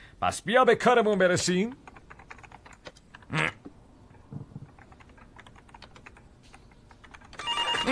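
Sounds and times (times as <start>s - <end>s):
speech: 0.2s - 1.9s
keyboard typing in an office: 1.3s - 3.3s, 4.6s - 7.9s
electronic telephone ring: 7.4s - 7.9s.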